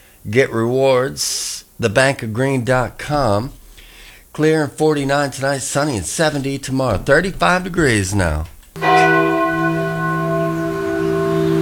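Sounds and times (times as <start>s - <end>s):
speech: 0.2s - 3.6s, 4.4s - 9.2s
church bell strike: 6.9s - 11.6s.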